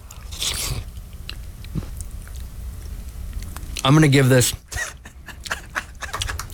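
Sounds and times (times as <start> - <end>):
mouth and chewing sounds: 0.0 - 3.8, 4.9 - 6.5
person slurping soup: 0.1 - 1.0
speech: 3.8 - 4.8
laughter: 4.7 - 6.5.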